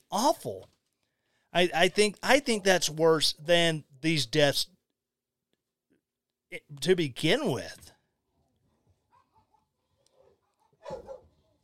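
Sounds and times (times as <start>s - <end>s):
speech: 0.1s - 0.8s, 1.5s - 4.8s, 6.5s - 7.9s
pet dogs barking: 9.1s - 11.5s
pet dogs whimpering and whining softly: 10.2s - 11.3s.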